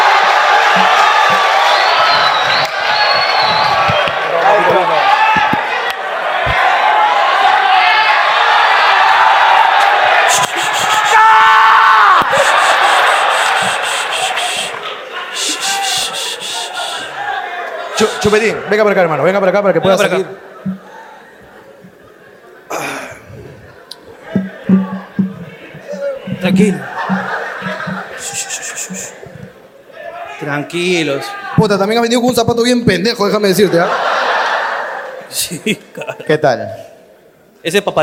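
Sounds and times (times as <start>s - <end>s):
dense loud crowd screaming and cheering: 0.0s - 18.8s, 23.2s - 30.6s
sharper individual yells: 10.3s - 13.5s
laughter: 12.2s - 17.2s, 19.9s - 29.7s, 33.4s - 36.3s
speech: 18.2s - 20.8s, 26.6s - 26.9s, 30.4s - 34.1s, 35.3s - 36.9s, 37.6s - 38.0s.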